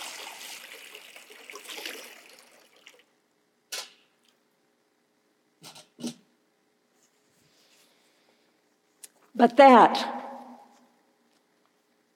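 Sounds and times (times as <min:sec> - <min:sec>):
water pouring into a font: 0:00.0 - 0:03.1
speech: 0:09.4 - 0:10.2.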